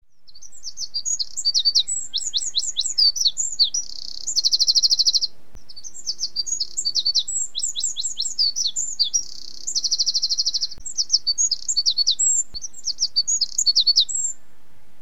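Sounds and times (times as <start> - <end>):
bird song: 0.0 - 15.0.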